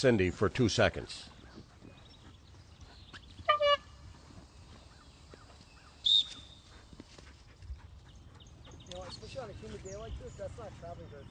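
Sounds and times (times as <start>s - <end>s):
speech: 0.0s - 1.3s
dog training whistle blown during Mondioring dog training outdoors on a humid day: 6.0s - 6.7s.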